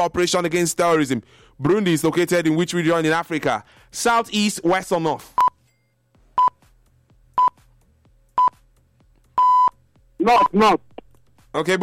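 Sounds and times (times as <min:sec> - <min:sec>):
speech: 0:00.0 - 0:05.4, 0:10.2 - 0:10.9, 0:11.6 - 0:11.8
electronic quiz buzzer beeps: 0:06.4 - 0:06.6, 0:07.4 - 0:07.6, 0:08.4 - 0:08.6, 0:09.4 - 0:09.8.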